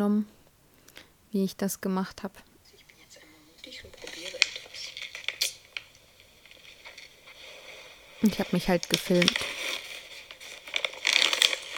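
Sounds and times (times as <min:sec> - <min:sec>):
speech: 0:00.0 - 0:00.4, 0:01.3 - 0:02.5, 0:08.2 - 0:09.6
small packet bag being torn open with crinkly rustles: 0:03.6 - 0:11.7.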